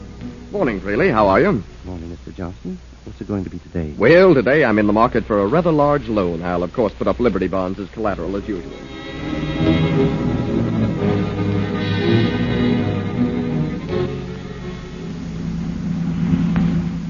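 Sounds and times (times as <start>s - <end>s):
car engine droning on the open road: 0.0s - 2.4s, 6.6s - 17.0s
speech: 0.5s - 9.6s.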